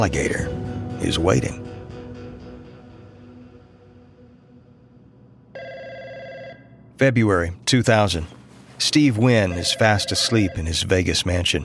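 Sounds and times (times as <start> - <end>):
speech: 0.0 - 1.6, 7.0 - 11.6
faint tonal music: 0.0 - 11.6
telephone ringing with a bright electronic trill in a Las Vegas mansion: 5.5 - 6.8, 9.4 - 10.8.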